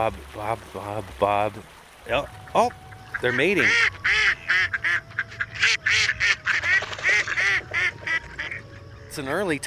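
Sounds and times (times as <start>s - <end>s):
speech: 0.0s - 4.2s, 9.2s - 9.6s
mallard ducks quacking on water: 2.5s - 9.3s.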